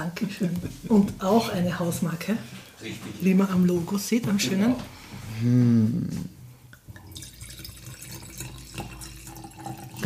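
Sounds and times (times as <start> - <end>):
speech: 0.0 - 6.4
Schilcher house-brand wine being poured into a glass: 6.8 - 10.0.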